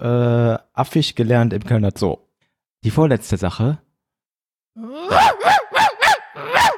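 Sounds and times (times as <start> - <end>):
speech: 0.0 - 2.2, 2.8 - 3.8
person's voice imitating a barking dog: 4.8 - 6.7.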